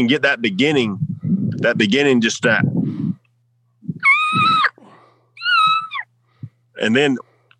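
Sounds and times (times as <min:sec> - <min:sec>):
speech: 0:00.0 - 0:03.0, 0:06.8 - 0:07.3
diaphragm turkey call squeaks held against the roof of the mouth: 0:04.0 - 0:04.8, 0:05.4 - 0:06.1.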